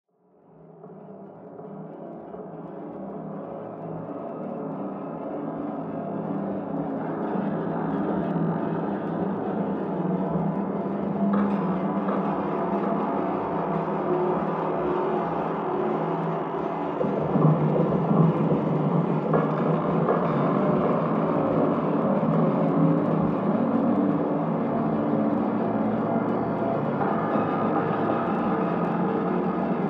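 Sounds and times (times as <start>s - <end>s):
ambience: 0.7s - 29.8s.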